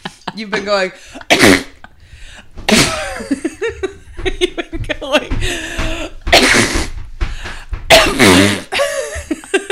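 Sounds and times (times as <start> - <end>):
laughter: 0.0 - 2.1, 2.7 - 6.1, 8.7 - 9.7
speech: 0.4 - 1.6
voice imitating a sneeze: 1.3 - 1.8, 2.7 - 3.1, 6.4 - 6.8, 7.9 - 8.7.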